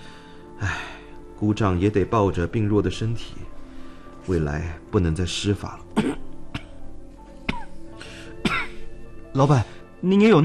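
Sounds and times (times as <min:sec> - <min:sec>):
speech: 0:01.4 - 0:03.6, 0:04.2 - 0:06.2, 0:09.4 - 0:10.4
person coughing: 0:06.0 - 0:06.8, 0:07.5 - 0:07.8, 0:08.4 - 0:08.9.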